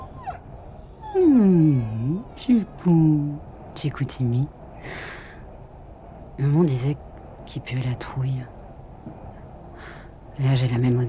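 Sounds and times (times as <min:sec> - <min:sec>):
dog whimpering: 0:00.0 - 0:02.3
steady low noise: 0:00.0 - 0:11.0
speech: 0:01.2 - 0:05.1, 0:06.4 - 0:08.6, 0:10.4 - 0:11.0.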